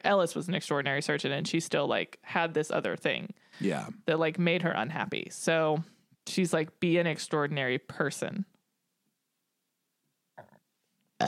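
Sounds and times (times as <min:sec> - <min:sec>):
speech: 0:00.0 - 0:08.5
person burping: 0:03.6 - 0:03.9, 0:10.4 - 0:10.6.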